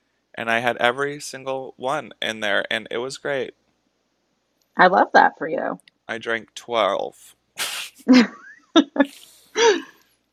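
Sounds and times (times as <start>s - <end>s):
speech: 0.4s - 3.6s, 4.8s - 7.4s, 8.0s - 9.9s
person sneezing: 7.6s - 8.1s.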